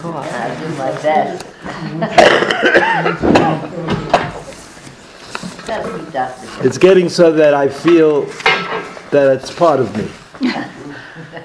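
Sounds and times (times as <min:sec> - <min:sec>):
speech: 0:00.0 - 0:04.0, 0:05.7 - 0:10.7
laughter: 0:01.6 - 0:03.3, 0:10.4 - 0:11.4
person coughing harshly: 0:02.1 - 0:03.2.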